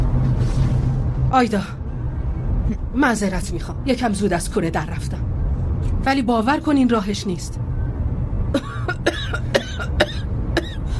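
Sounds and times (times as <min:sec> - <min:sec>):
low rumble: 0:00.0 - 0:10.9
speech: 0:01.3 - 0:01.8, 0:02.7 - 0:05.3, 0:06.0 - 0:07.7
harsh rasping coughs: 0:08.6 - 0:10.9.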